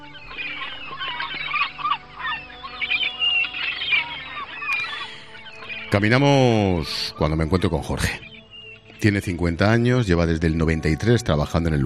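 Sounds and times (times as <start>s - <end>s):
flock of seagulls calling outside a shipowners' cooperative building: 0.0s - 11.8s
speech: 5.9s - 8.2s, 9.0s - 11.8s.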